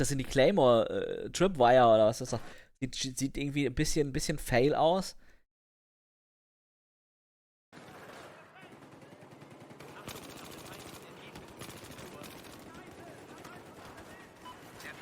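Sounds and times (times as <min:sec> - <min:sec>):
speech: 0:00.0 - 0:05.2
rapid automatic gunfire from a TAR-21 rifle in a video game: 0:07.8 - 0:15.0.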